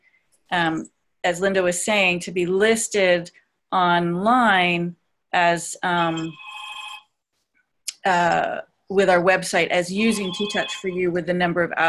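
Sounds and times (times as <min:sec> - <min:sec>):
speech: 0:00.5 - 0:06.4, 0:08.0 - 0:11.8
telephone ringing: 0:06.2 - 0:07.1, 0:10.1 - 0:11.0.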